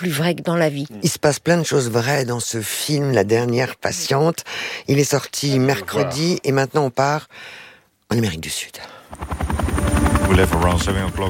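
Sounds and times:
speech: 0:00.0 - 0:11.2
helicopter rotor pounding in South America: 0:09.1 - 0:11.2.

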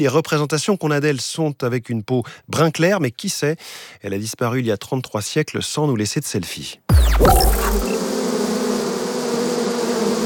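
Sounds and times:
speech: 0:00.0 - 0:08.0
huge swarm of thousands of bees buzzing: 0:06.9 - 0:10.2.

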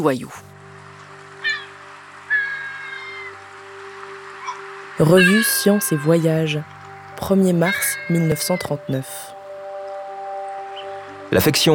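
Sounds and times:
speech: 0:00.0 - 0:00.5, 0:05.0 - 0:09.3, 0:11.3 - 0:11.7
African penguin braying call: 0:01.4 - 0:03.8, 0:04.4 - 0:09.7.

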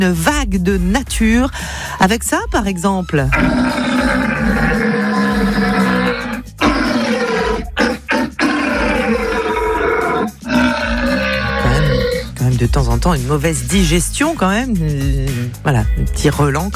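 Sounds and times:
speech: 0:00.0 - 0:05.0, 0:12.7 - 0:16.7
red deer stag belling in the rut: 0:03.3 - 0:12.4.

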